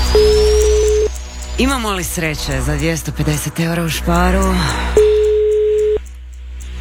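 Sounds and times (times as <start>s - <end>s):
phone line ringback tone: 0.2s - 1.1s, 5.0s - 6.0s
speech: 1.6s - 5.0s.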